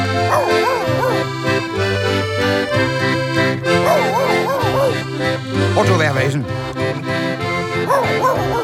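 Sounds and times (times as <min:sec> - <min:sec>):
steady music: 0:00.0 - 0:08.6
dog barking: 0:00.1 - 0:01.4, 0:03.7 - 0:05.1, 0:07.8 - 0:08.6
dog whining yelps: 0:00.2 - 0:01.3, 0:03.8 - 0:05.0, 0:07.8 - 0:08.6.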